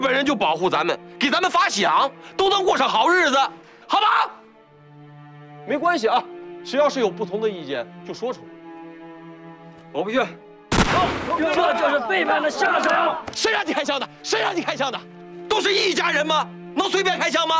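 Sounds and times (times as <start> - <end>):
speech: 0.0 - 4.4, 5.6 - 8.5, 9.9 - 17.5
gunshot: 10.7 - 11.7
excited men shouting and talking over one another: 11.0 - 13.7.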